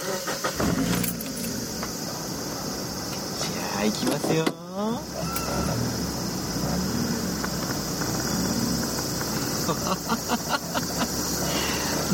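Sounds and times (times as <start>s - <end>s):
Roadster sports car engine starting and idling: 0.0s - 12.1s
keys jingling: 0.8s - 1.7s
speech: 3.8s - 5.4s, 9.7s - 10.4s
laughter: 9.3s - 12.1s.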